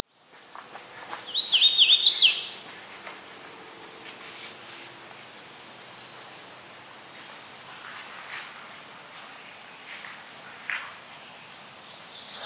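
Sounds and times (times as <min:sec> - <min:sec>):
Hooded Warbler Setophaga citrina song: 0:01.3 - 0:02.6, 0:11.0 - 0:12.4.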